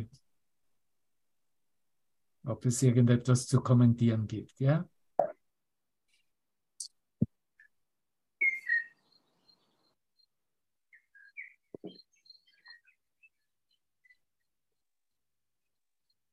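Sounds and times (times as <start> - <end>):
speech: 2.5 - 4.9
short whistled bird calls: 8.4 - 10.0, 10.9 - 14.5
bird chirps: 8.4 - 16.2.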